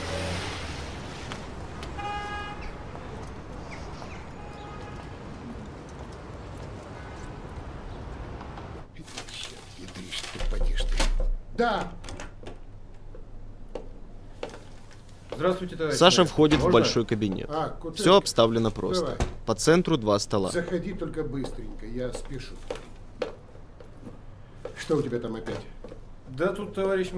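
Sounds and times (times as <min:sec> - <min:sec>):
horn toots: 0:00.0 - 0:05.8
yellow bus engine rumbling: 0:00.0 - 0:10.9
traffic noise: 0:00.0 - 0:27.1
speech: 0:11.6 - 0:12.0, 0:15.4 - 0:22.8, 0:24.9 - 0:27.1.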